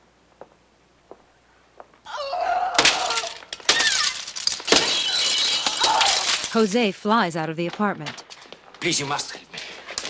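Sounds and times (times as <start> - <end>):
glass perfume bottles on a vanity table smashing: 2.8 - 6.7
speech: 6.6 - 8.2, 8.8 - 9.4.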